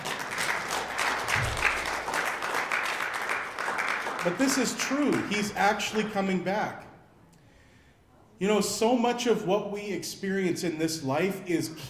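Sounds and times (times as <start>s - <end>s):
crowd applauding: 0.0s - 6.2s
speech: 4.2s - 6.9s, 8.4s - 11.8s.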